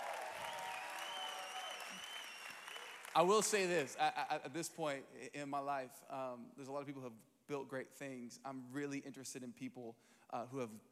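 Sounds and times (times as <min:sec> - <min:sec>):
church congregation applauding: 0:00.0 - 0:04.0
speech: 0:03.2 - 0:10.9.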